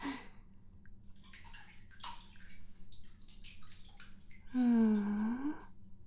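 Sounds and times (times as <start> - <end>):
water sloshing and dripping in a filled bathtub: 0.8 - 5.0.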